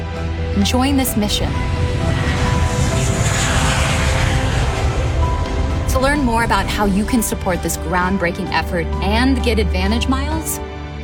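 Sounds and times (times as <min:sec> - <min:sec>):
airplane engine roar during takeoff: 0:00.0 - 0:10.4
speech: 0:00.6 - 0:02.2, 0:06.0 - 0:10.7.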